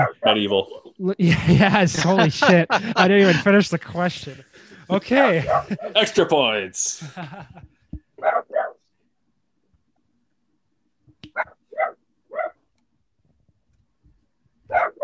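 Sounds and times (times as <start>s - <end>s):
dog barking: 0.0s - 0.9s, 5.4s - 6.0s, 8.2s - 8.8s, 11.4s - 12.6s, 14.7s - 15.0s
speech: 0.0s - 7.7s
laughter: 0.3s - 7.7s.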